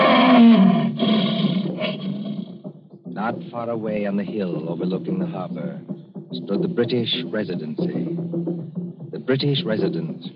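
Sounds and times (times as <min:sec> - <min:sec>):
captive lion roaring at a palace in Zanzibar: 0:00.0 - 0:02.6
speech: 0:03.2 - 0:08.4, 0:09.3 - 0:10.3.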